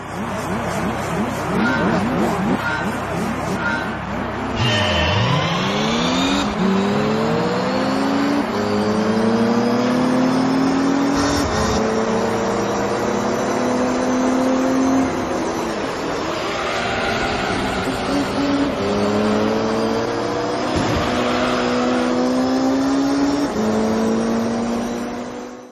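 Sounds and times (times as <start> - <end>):
tyre squeals and skids in a racing video game: 0.0 - 6.6, 14.9 - 19.2, 20.4 - 22.8
racing car engines revving in a racing video game: 0.0 - 25.7.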